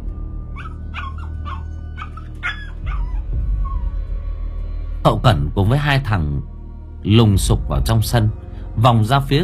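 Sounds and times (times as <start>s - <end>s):
dog yelping in pain after falling from a tiled roof into a back garden: 0.6s - 4.0s
speech: 5.1s - 9.4s.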